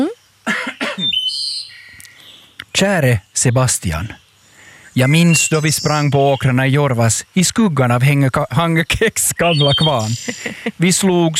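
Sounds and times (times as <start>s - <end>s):
person clearing throat: 0.5s - 1.1s
thin high chirping tones: 1.0s - 11.3s
speech: 2.8s - 4.2s, 5.0s - 11.3s
laughter: 9.8s - 11.3s.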